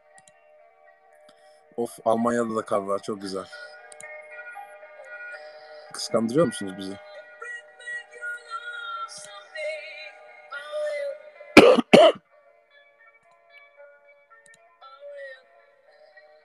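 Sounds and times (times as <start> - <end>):
quiet musical tones: 0.0 - 16.4
speech: 1.8 - 3.7, 6.0 - 7.1
person with a sore chest coughing: 11.6 - 12.2.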